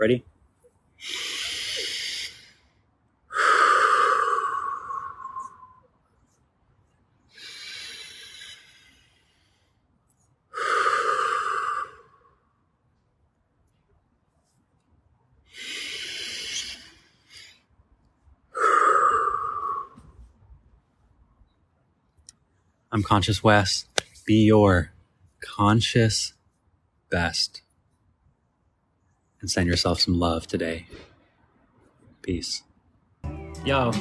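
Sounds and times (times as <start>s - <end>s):
speech: 0.0s - 0.3s, 1.0s - 1.4s, 23.0s - 25.0s, 25.6s - 26.4s, 27.1s - 27.6s, 29.4s - 31.1s, 32.2s - 32.7s, 33.6s - 33.9s
deep slow breaths in a guided breathing exercise: 1.0s - 5.9s, 7.3s - 12.4s, 15.5s - 17.7s, 18.5s - 20.4s.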